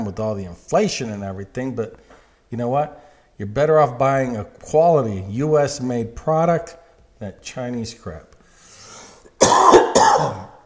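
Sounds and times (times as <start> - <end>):
speech: 0.0 - 8.3, 10.0 - 10.5
person coughing: 9.4 - 10.6.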